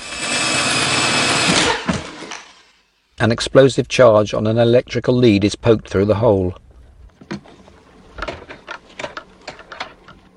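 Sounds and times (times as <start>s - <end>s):
power drill boring into a safe: 0.0s - 2.7s
speech: 3.2s - 6.6s.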